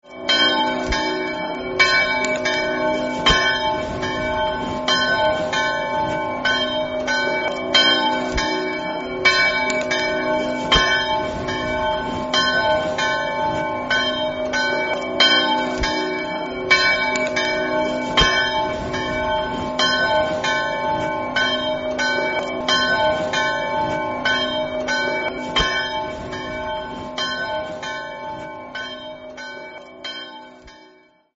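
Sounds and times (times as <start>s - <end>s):
bells ringing in Gradisca: 0.0s - 31.3s.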